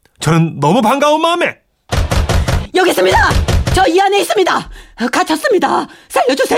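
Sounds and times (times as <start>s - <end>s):
speech: 0.2s - 1.6s, 2.8s - 6.5s
heavy urgent knocking on a door: 1.9s - 4.1s.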